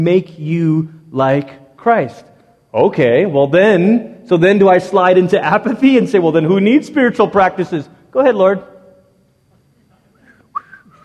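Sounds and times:
speech: 0.0s - 8.7s
person attempting to whistle: 10.2s - 11.0s.

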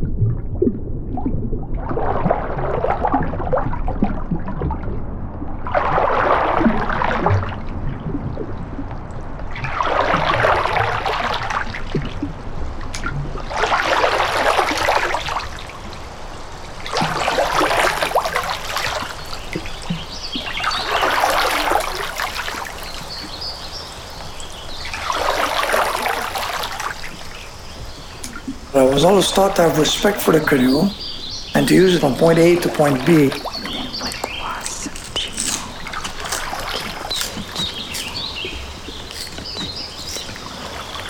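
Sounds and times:
river water splashing and trickling surge: 0.0s - 41.0s
river water flowing: 12.4s - 41.0s
speech: 29.0s - 31.0s, 31.7s - 33.5s.

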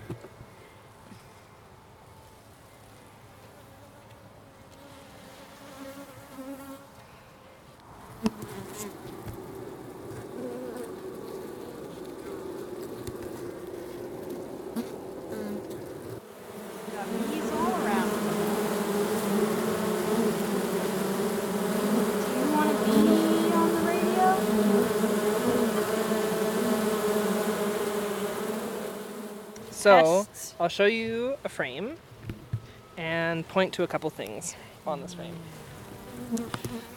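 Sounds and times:
honeybees buzzing inside a beehive: 8.1s - 30.3s, 34.9s - 36.9s
speech: 8.2s - 9.2s, 29.8s - 32.1s, 33.0s - 35.6s, 36.3s - 36.9s.

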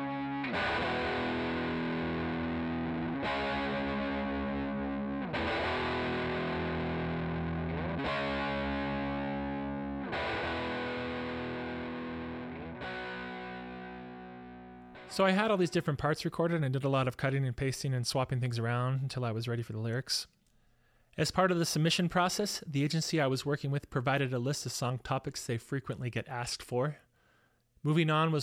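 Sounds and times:
heavily distorted electric guitar playing sustained power chords: 0.0s - 15.2s
speech: 15.1s - 20.4s, 21.2s - 27.0s, 27.8s - 28.4s.

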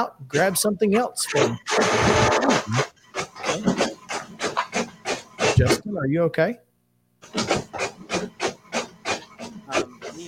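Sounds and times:
speech: 0.0s - 2.9s, 5.6s - 7.6s
printer clicking while printing: 1.4s - 5.8s, 7.2s - 10.2s.

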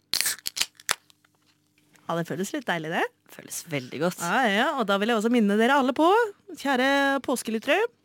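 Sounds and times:
beer can or bottle cracking open with a pop and fizzy hiss: 0.0s - 1.1s
speech: 2.1s - 8.0s.

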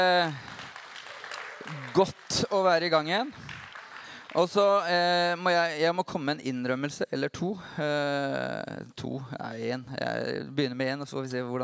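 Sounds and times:
speech: 0.0s - 0.5s, 1.6s - 3.5s, 4.4s - 11.6s
audience clapping: 0.0s - 5.4s.

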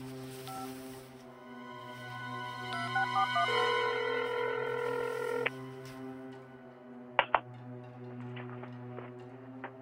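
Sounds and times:
constant low hum: 0.4s - 9.8s
longer steady telephone tone: 1.4s - 5.8s.

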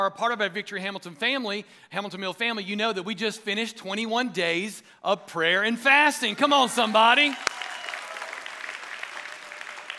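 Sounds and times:
speech: 0.0s - 7.7s
crowd clapping: 6.4s - 9.9s.

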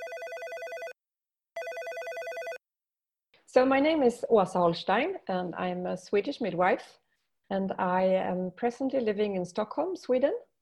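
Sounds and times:
telephone trilling electronic ring: 0.0s - 1.0s, 1.6s - 2.6s
speech: 3.5s - 10.5s.

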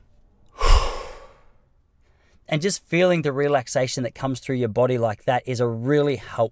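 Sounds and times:
person taking a deep breath: 0.6s - 1.5s
speech: 2.5s - 6.5s.

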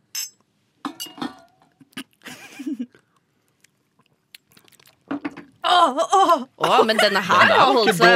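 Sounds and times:
shot glasses clinking in a toast: 0.1s - 1.5s
glass clatter: 0.1s - 1.7s
laughter: 2.2s - 2.9s, 6.6s - 8.1s
speech: 5.8s - 8.1s.

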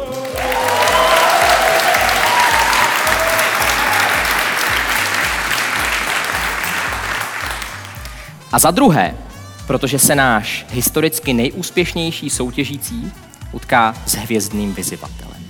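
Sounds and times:
live theatre audience applauding: 0.0s - 8.4s
speech: 8.6s - 15.3s.

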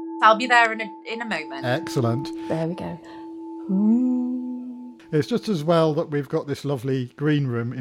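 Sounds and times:
speech: 0.2s - 3.2s, 3.7s - 4.2s, 5.1s - 7.7s
bell struck as a door-opening sound effect: 0.2s - 3.7s.

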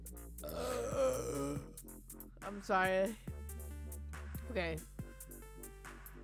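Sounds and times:
long low rumbling burp after chugging a drink: 0.5s - 1.7s
person gulping a drink: 0.5s - 1.7s
speech: 2.5s - 3.3s, 4.5s - 4.9s.

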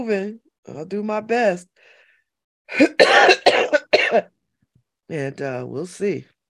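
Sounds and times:
speech: 0.0s - 2.0s, 2.7s - 4.3s, 5.1s - 6.3s
wet phlegmy coughs: 2.7s - 4.3s.

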